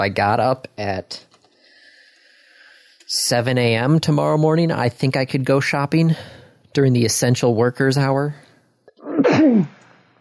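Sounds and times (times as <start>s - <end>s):
speech: 0.0s - 1.3s, 3.1s - 8.4s, 9.3s - 9.8s
person sneezing: 9.0s - 9.8s.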